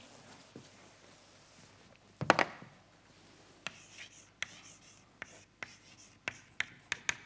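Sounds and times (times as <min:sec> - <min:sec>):
handwriting of an equation during a mathematics lecture: 0:03.7 - 0:07.2
pen taps: 0:05.6 - 0:07.2.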